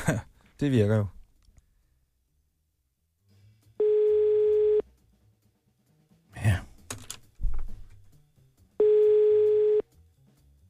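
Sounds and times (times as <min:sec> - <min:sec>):
speech: 0:00.1 - 0:01.2
ringing tone of an outgoing telephone call: 0:03.8 - 0:04.8, 0:08.8 - 0:09.8.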